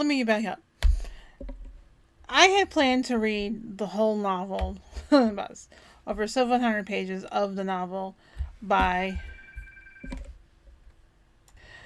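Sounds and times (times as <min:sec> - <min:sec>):
speech: 0:00.0 - 0:00.7, 0:02.3 - 0:09.3, 0:10.0 - 0:10.2
telephone ringing with steady electronic tones: 0:09.1 - 0:10.4.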